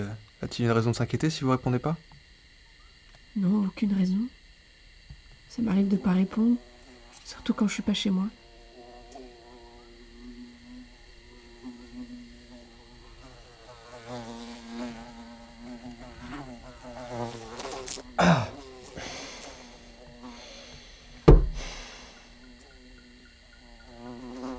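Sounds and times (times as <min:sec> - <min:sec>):
speech: 0:00.0 - 0:02.1, 0:03.4 - 0:04.4, 0:05.5 - 0:06.7, 0:07.3 - 0:08.4
fly buzzing: 0:00.0 - 0:24.5
sharp loud thumps: 0:21.2 - 0:22.1.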